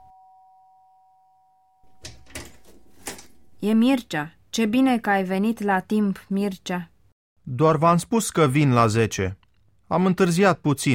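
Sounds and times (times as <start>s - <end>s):
doorbell ringing with a steady electronic tone: 0.0s - 2.5s
loud clattering and rustling noises: 1.9s - 3.4s
speech: 3.6s - 6.9s, 7.5s - 10.9s.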